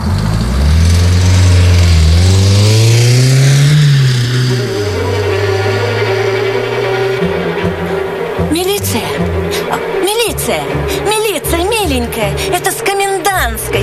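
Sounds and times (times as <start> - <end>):
car engine revving as car pulls away: 0.0 - 13.8
voices: 4.8 - 13.8.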